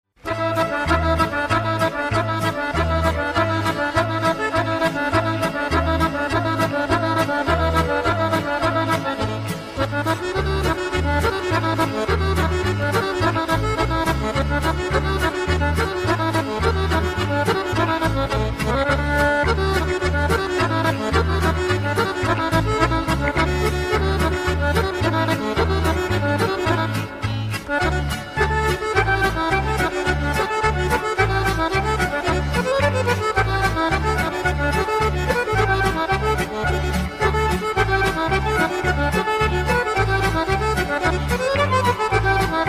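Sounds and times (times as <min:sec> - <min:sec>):
Serbian music: 0:00.1 - 0:42.6.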